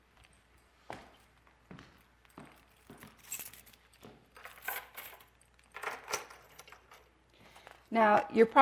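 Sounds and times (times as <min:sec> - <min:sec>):
bunch of keys jangling and clinking: 0:02.0 - 0:07.2
speech: 0:08.0 - 0:08.6.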